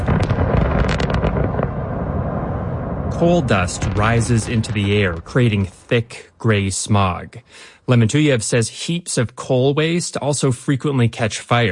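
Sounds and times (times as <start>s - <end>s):
open pit mine blasting explosions: 0.0s - 5.9s
heavy rolling rumble after open pit mine blasting: 0.0s - 6.1s
speech: 3.2s - 11.7s.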